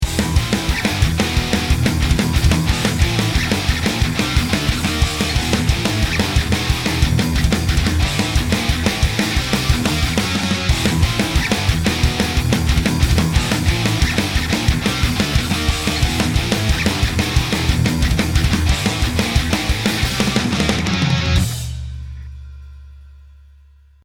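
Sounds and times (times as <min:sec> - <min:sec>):
thrash metal music with wet effects: 0:00.0 - 0:23.8.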